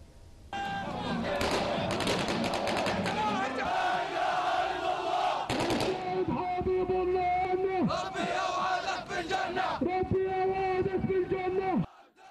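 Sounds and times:
crowd of mourners at a funeral march in Khan Yunis Gaza chanting and shouting: 0.6s - 12.3s
rapid bursts of gunfire: 1.4s - 3.1s, 5.5s - 6.0s.

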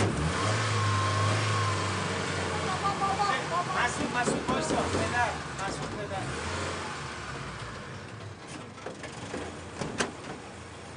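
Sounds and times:
car engine revving: 0.0s - 8.1s.

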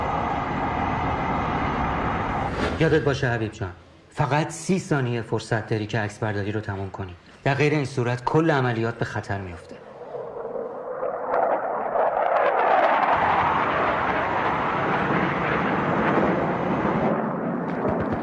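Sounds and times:
airplane flying overhead with loud engine roar and high whine: 0.0s - 3.1s, 9.8s - 18.1s
speech: 2.8s - 9.8s.

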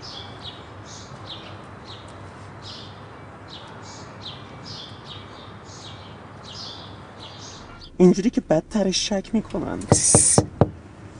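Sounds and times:
low hum: 7.4s - 11.1s
speech: 8.0s - 10.6s
knocking on car window glass: 9.8s - 10.8s.

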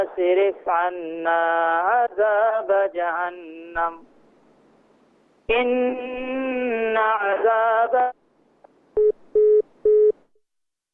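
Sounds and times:
speech: 0.0s - 4.1s, 5.5s - 8.2s
mobile phone busy tone beeps after call disconnect: 9.0s - 10.2s.

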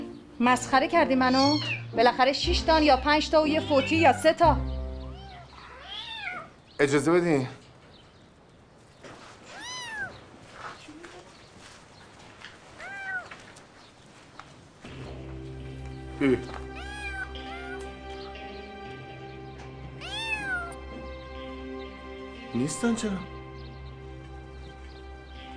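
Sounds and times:
speech: 0.4s - 4.7s, 6.8s - 7.6s, 16.2s - 16.5s, 22.7s - 23.4s
cat meowing: 1.2s - 2.0s, 5.1s - 6.6s, 9.5s - 10.2s, 12.8s - 13.4s, 16.7s - 17.9s, 20.0s - 20.8s.

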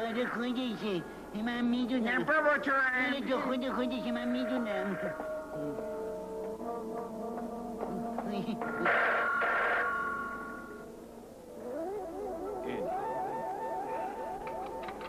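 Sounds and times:
speech: 0.0s - 5.9s
busy musical background: 0.0s - 15.0s
telephone ringing in warbling tones: 8.6s - 10.9s.

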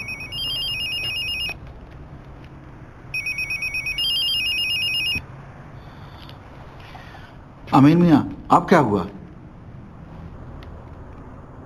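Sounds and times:
telephone ringing with electronic warbling ringtone: 0.0s - 1.6s, 3.1s - 5.3s
speech: 7.8s - 9.2s.

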